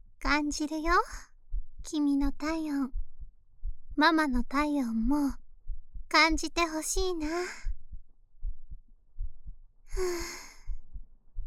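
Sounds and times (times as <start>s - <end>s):
steady heartbeat thumping: 0.2s - 11.4s
speech: 0.3s - 3.0s, 4.0s - 5.4s, 6.1s - 7.7s, 10.0s - 10.4s
soft breathy sigh: 9.9s - 10.7s.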